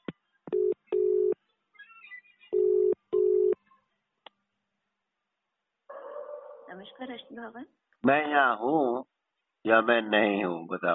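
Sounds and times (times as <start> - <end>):
telephone keypad tones dialing an extension number on an automated phone line: 2.5 - 3.6
speech: 6.8 - 10.9.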